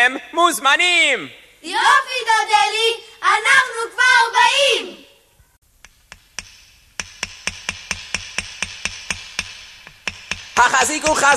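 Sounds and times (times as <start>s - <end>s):
speech: 0.0s - 5.0s, 10.6s - 11.3s
hammer driving nails into wooden boards of sukkah walls: 5.8s - 11.3s.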